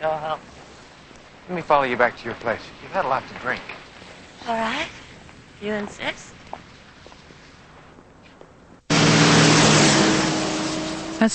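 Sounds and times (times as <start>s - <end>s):
speech: 0.0s - 0.7s, 1.5s - 3.8s, 4.4s - 5.0s, 5.6s - 6.4s
tires hissing on water on a wet road: 0.1s - 3.7s, 8.9s - 11.3s
car engine humming driving by on a wet road: 8.9s - 11.3s.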